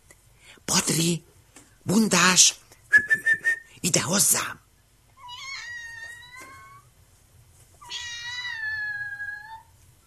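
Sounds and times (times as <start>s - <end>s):
speech: 0.7s - 4.6s
cat meowing: 5.2s - 6.9s, 7.8s - 9.8s.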